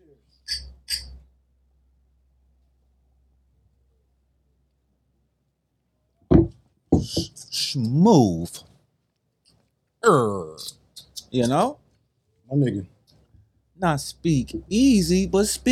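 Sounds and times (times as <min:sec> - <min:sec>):
glasses tapped together in a toast: 0:00.5 - 0:01.2
speech: 0:07.1 - 0:08.7, 0:10.1 - 0:10.7, 0:11.3 - 0:11.8, 0:12.5 - 0:13.0, 0:13.8 - 0:15.7.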